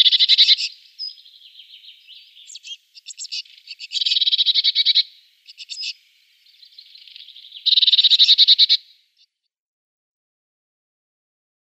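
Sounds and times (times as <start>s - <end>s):
great tit scolding calls: 0.0s - 8.9s.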